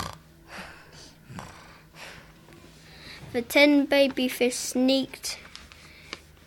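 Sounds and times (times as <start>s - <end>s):
person imitating snoring with their voice: 0.0s - 1.8s
speech: 3.3s - 5.4s.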